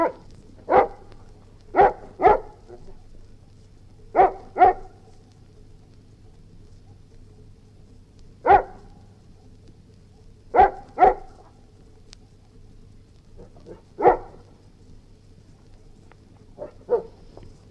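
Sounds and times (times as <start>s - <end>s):
Golden Retriever barking: 0.0s - 1.1s, 1.7s - 2.9s, 4.1s - 5.0s, 8.4s - 8.9s, 10.5s - 11.4s, 13.4s - 14.5s, 16.6s - 17.2s
low hum: 0.0s - 17.6s.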